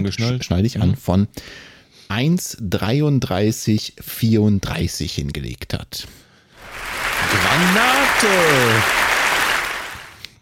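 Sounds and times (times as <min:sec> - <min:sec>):
speech: 0:00.0 - 0:09.1
dense loud applause from a group: 0:06.6 - 0:10.3.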